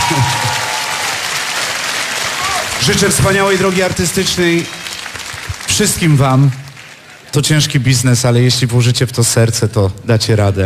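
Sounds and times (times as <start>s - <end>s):
audience applause at a song festival award ceremony: 0.0s - 7.8s
speech: 0.1s - 0.5s, 2.8s - 4.8s, 5.8s - 6.6s, 7.3s - 10.6s.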